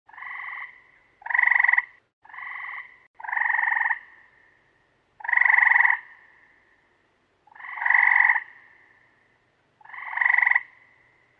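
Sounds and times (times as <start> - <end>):
frog croaking: 0.1 - 4.4, 5.2 - 6.6, 7.5 - 9.1, 9.8 - 11.2.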